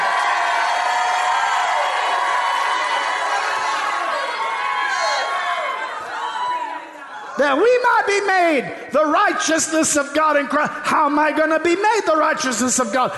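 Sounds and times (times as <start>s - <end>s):
large crowd shouting and cheering: 0.0s - 10.1s
speech: 7.4s - 13.1s.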